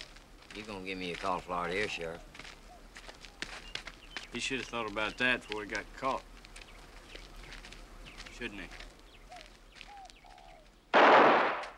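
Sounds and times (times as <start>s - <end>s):
speech: 0.6s - 2.3s, 4.3s - 6.3s, 8.4s - 8.8s
single gunshot fired into the distance: 11.0s - 11.7s.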